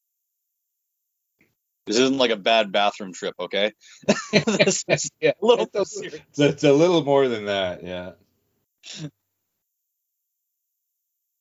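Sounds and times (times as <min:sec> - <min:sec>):
speech: 0:01.9 - 0:08.2, 0:08.8 - 0:09.2
laughter: 0:03.9 - 0:06.6
loud forceful exaggerated cough: 0:08.8 - 0:09.1.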